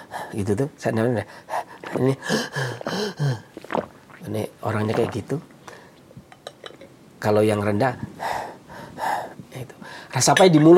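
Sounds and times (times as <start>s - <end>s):
speech: 0.3s - 5.5s, 7.2s - 8.2s, 10.2s - 10.7s
voice imitating high-pitched panting: 1.5s - 3.5s.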